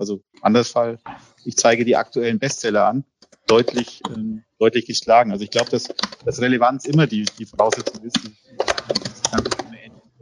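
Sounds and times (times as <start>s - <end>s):
speech: 0.0s - 9.6s
quiet noise: 0.0s - 10.2s
typing on a computer keyboard during a call: 5.5s - 6.2s, 6.9s - 9.8s.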